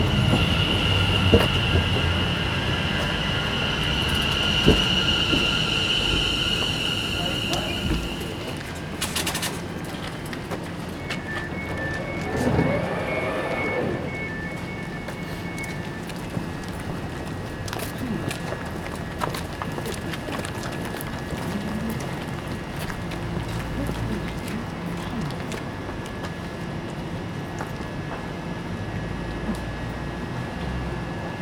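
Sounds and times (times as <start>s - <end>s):
steady low hum: 0.0s - 23.6s
voices of people waiting on a station platform: 0.0s - 26.3s
train whine and rumble on a cold station platform: 0.0s - 31.4s.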